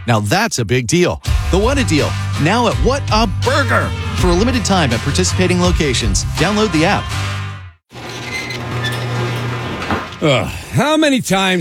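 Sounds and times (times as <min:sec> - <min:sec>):
speech: 0:00.0 - 0:07.4, 0:10.2 - 0:11.6
garage door rumbling and grinding: 0:07.9 - 0:10.6
faint thin squeaks of garage door: 0:08.0 - 0:09.3.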